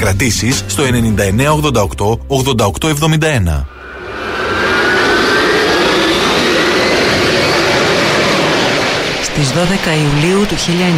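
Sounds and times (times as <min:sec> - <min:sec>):
speech: 0:00.0 - 0:04.6, 0:09.4 - 0:10.9
jet airplane roaring as it takes off: 0:03.7 - 0:10.9.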